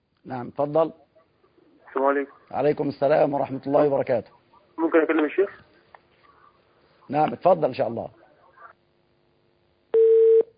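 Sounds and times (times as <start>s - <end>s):
speech: 0.2s - 1.0s, 2.0s - 5.7s, 7.1s - 8.2s
telephone line tone beep after a call is cut off: 10.0s - 10.5s.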